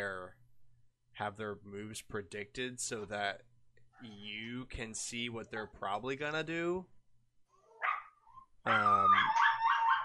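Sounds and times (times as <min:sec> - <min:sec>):
speech: 0:00.0 - 0:00.4, 0:01.2 - 0:07.0, 0:08.6 - 0:09.4
dogs barking and howling: 0:07.7 - 0:10.0.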